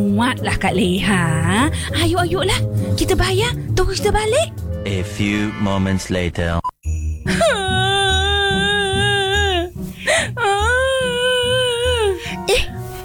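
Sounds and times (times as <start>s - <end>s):
speech: 0.0s - 7.7s
low rhythmic background: 0.0s - 13.0s
person crying and wailing: 7.3s - 12.7s
person whimpering: 7.3s - 12.7s
person sobbing gasp: 7.3s - 12.8s.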